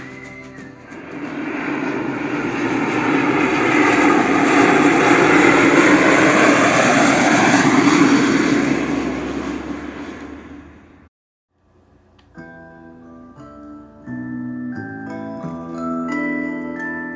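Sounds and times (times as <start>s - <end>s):
airplane engine roar: 0.0s - 11.1s.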